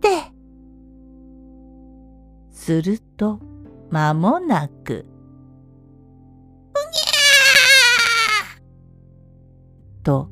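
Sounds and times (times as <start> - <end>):
speech: 2.6 - 5.1, 10.0 - 10.3
newborn baby boy crying after delivery: 6.8 - 8.6.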